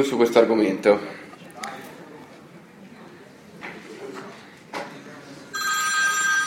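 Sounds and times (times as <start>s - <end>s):
speech: 0.0s - 1.7s
telephone ringing with electronic trill: 5.5s - 6.4s.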